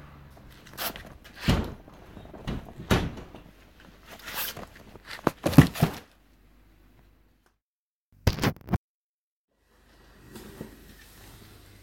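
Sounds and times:
faint handling noise: 0.4s - 6.1s
cardboard package of books ripping and rustling open: 4.1s - 6.1s.

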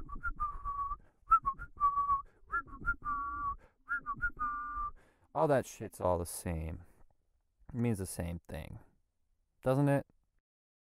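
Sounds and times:
person whistling a wavering tune: 0.0s - 5.1s
speech: 5.4s - 6.9s, 7.7s - 8.9s, 9.6s - 10.1s.

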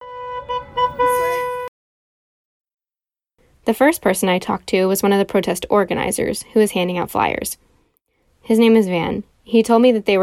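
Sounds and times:
car horns honking from passing cars: 0.0s - 1.7s
traffic noise: 0.0s - 1.7s
speech: 3.7s - 7.7s, 8.5s - 10.2s.

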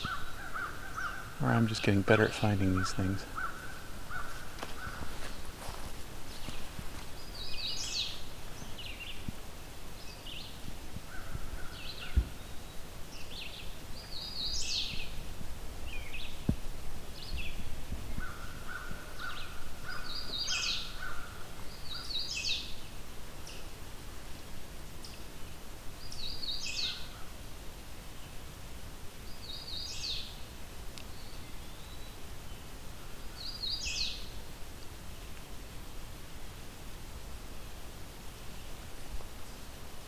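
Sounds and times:
hooded warbler singing short bright whistled phrases: 0.0s - 23.8s, 25.0s - 27.4s, 28.0s - 36.6s
steady outdoor hiss: 0.0s - 40.0s
speech: 1.4s - 3.4s.

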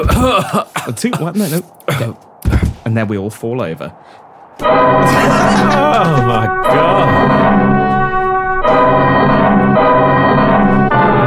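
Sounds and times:
person coughing: 0.0s - 2.8s, 5.0s - 6.5s
speech: 0.0s - 8.0s, 8.6s - 10.4s
laughter: 5.0s - 7.4s.

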